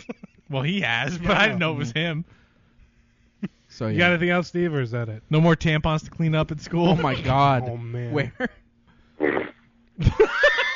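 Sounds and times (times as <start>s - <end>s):
speech: 0.0s - 2.4s, 3.4s - 8.6s, 9.2s - 10.4s
fart: 9.2s - 9.7s.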